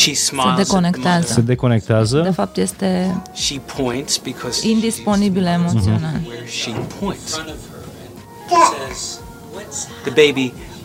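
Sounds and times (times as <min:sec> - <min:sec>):
speech: 0:00.0 - 0:07.7, 0:08.5 - 0:10.7
baby fussing and babbling in distress: 0:05.7 - 0:06.2, 0:08.4 - 0:09.2
baby letting out short whiny rising cries: 0:08.5 - 0:09.2.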